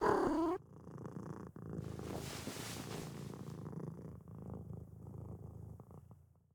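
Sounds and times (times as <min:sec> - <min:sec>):
cat getting into a box: 0:01.9 - 0:03.5.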